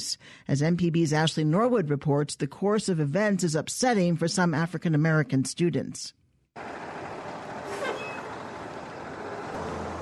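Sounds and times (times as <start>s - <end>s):
speech: 0.1s - 6.7s
diesel rumble of school buses pulling up: 6.6s - 10.0s
school bus air brakes hissing: 7.6s - 8.4s.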